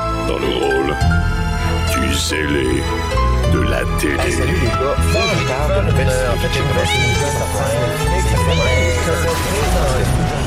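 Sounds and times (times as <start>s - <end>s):
documentary series instrumental theme music: 0.0s - 10.4s
speech: 0.3s - 10.4s
cat meowing in documentary series theme music: 4.9s - 10.1s.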